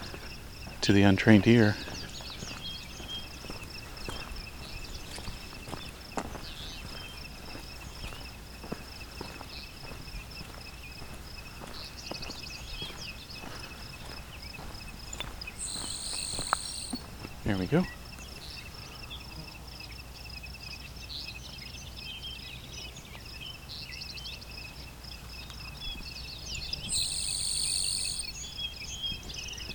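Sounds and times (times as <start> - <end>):
insect chorus: 0.0 - 29.7
speech: 0.8 - 1.9
grasshopper sparrow high thin buzzing song: 15.6 - 17.1, 26.9 - 28.3.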